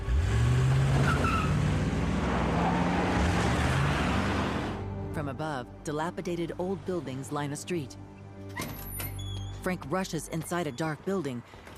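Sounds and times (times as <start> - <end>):
SUV engine droning as it pulls away: 0.0 - 5.1
speech: 5.4 - 8.6, 9.6 - 11.7.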